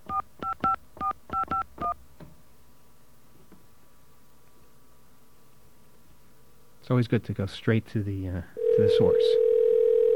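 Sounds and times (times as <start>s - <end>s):
telephone keypad dialing tones: 0.1s - 2.0s
speech: 6.9s - 9.5s.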